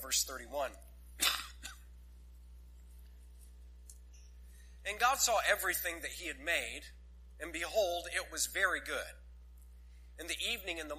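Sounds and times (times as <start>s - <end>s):
low steady hum: 0.0s - 10.9s
speech: 0.1s - 0.9s, 4.9s - 9.2s, 10.2s - 10.9s
audience member coughing: 1.2s - 1.9s
throat clearing in audience: 1.2s - 1.9s.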